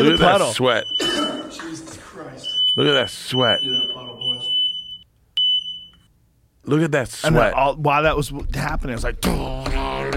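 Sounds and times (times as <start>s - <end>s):
smoke alarm beeping in a house: 0.0s - 6.1s
speech: 0.1s - 1.8s, 2.8s - 4.3s, 6.6s - 10.1s.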